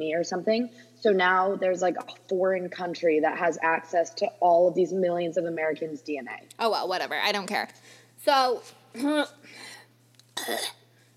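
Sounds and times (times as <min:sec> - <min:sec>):
speech: 0:00.0 - 0:09.7, 0:10.4 - 0:10.8
throat clearing from phlegm: 0:10.4 - 0:10.8.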